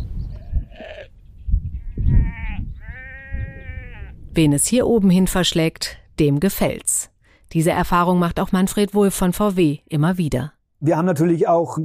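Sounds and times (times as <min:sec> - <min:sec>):
low rumble of wind outdoors: 0:00.0 - 0:06.7
several sheep bleating: 0:00.4 - 0:01.2, 0:01.8 - 0:04.2
speech: 0:04.4 - 0:11.8.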